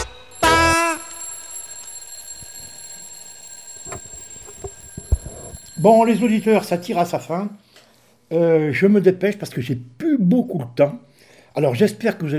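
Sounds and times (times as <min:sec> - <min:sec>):
alarm clock ringing: 0:00.0 - 0:07.5
speech: 0:05.8 - 0:07.6, 0:08.3 - 0:12.3.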